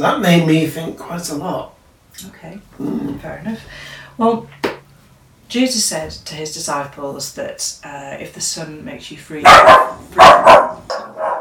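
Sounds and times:
speech: 0.0 - 4.6, 5.5 - 11.0
dog barking: 9.4 - 11.3.

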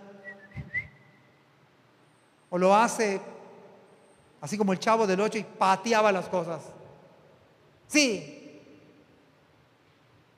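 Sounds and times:
person whistling a short bright melody: 0.2 - 1.1
speech: 2.5 - 3.3, 4.4 - 6.8, 7.9 - 8.4.

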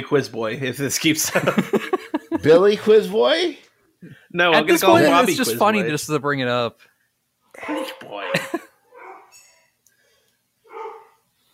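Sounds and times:
speech: 0.0 - 6.9
laughter: 1.1 - 2.9, 4.6 - 5.8, 8.2 - 8.7
dogs barking: 7.6 - 9.4, 10.7 - 11.2.

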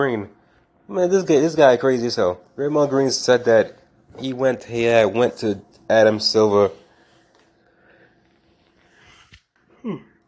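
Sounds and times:
speech: 0.0 - 6.8, 9.8 - 10.1
person yawning: 9.8 - 10.2.

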